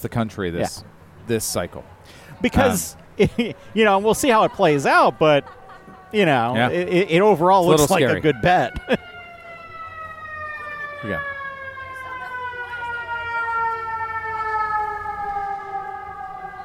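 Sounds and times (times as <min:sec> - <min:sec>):
speech: 0:00.0 - 0:09.0, 0:11.0 - 0:11.3
person laughing: 0:02.4 - 0:06.1, 0:07.7 - 0:09.0
fire engine sirens wailing as they pass: 0:02.4 - 0:16.6
fire engine siren whoop: 0:04.8 - 0:16.6.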